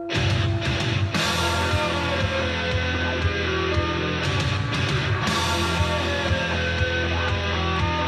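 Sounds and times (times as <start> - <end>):
heavily distorted electric bass guitar playing an opening riff: 0.1 - 8.0.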